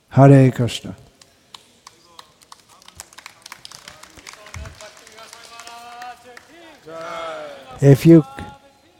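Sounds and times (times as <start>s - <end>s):
speech: 0.1s - 1.0s, 7.8s - 8.4s
scattered hand claps from an audience: 1.0s - 7.7s
murmuring voices: 2.9s - 8.9s.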